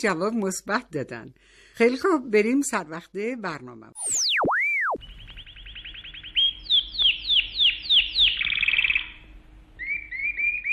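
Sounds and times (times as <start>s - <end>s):
speech: 0.0s - 4.4s
loud whistled sweep: 4.0s - 5.0s
rapid trilling bird calls: 4.0s - 10.7s.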